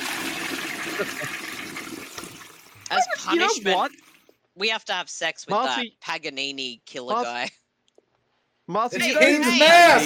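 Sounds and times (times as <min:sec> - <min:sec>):
toilet flushing: 0:00.0 - 0:04.3
speech: 0:01.0 - 0:01.5, 0:03.2 - 0:04.0, 0:04.6 - 0:07.6, 0:08.7 - 0:10.0.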